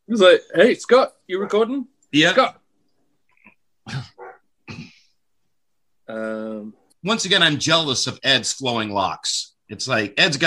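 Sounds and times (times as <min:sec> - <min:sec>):
speech: 0:00.1 - 0:02.6, 0:03.9 - 0:04.2, 0:06.1 - 0:10.4
neighbor's dog barking: 0:01.3 - 0:01.7, 0:04.2 - 0:04.4.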